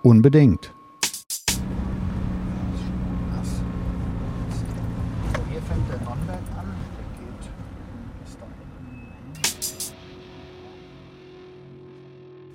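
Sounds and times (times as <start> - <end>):
speech: 0.0 - 0.8
low engine rumble and road drone inside a moving car: 1.6 - 9.5.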